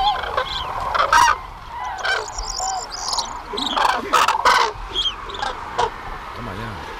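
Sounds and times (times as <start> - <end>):
flock of migrating cranes honking and trumpeting: 0.0 - 6.2.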